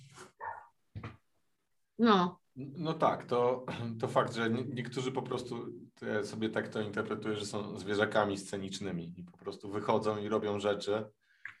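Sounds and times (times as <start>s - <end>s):
dog barking: 0.4s - 0.7s
speech: 2.0s - 11.2s.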